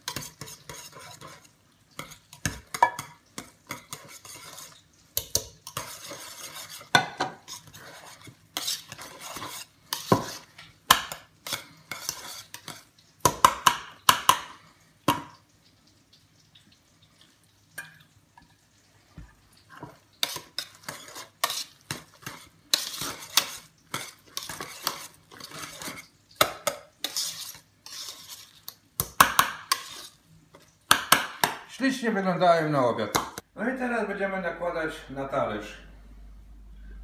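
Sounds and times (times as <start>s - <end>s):
utensil vigorously stirring milk with butter: 0.0s - 14.5s, 19.2s - 30.9s
speech: 31.8s - 35.8s.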